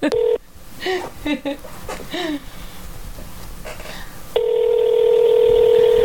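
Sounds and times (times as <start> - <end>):
long continuous dial-type tone: 0.1 - 0.4, 4.3 - 6.0
telephone keypad tones: 4.4 - 6.0.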